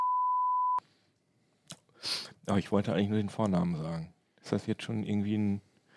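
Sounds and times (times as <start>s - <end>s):
censor bleep over a spoken surname: 0.0s - 0.8s
short breathy bursts: 1.9s - 2.4s
speech: 2.0s - 5.7s.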